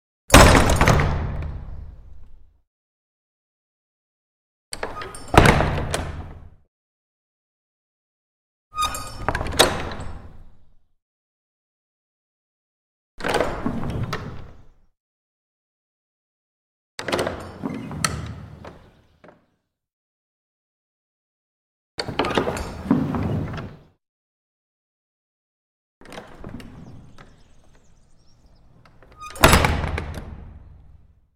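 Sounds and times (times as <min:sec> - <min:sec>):
large wooden main gate: 0:00.3 - 0:02.6, 0:04.8 - 0:06.6, 0:08.7 - 0:10.8, 0:13.2 - 0:14.9, 0:17.0 - 0:19.6, 0:22.0 - 0:23.9, 0:26.0 - 0:31.2.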